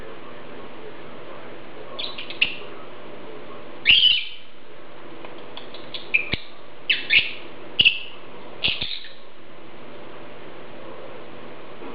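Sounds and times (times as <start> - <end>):
Agapornis lovebird shrill squeaky chirps: 2.0 - 2.6, 3.8 - 4.5, 5.7 - 9.2.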